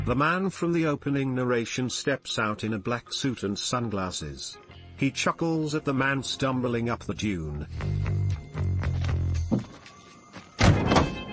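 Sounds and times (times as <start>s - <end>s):
speech: 0.0s - 8.2s
car boot being opened: 9.4s - 9.8s, 10.4s - 11.3s.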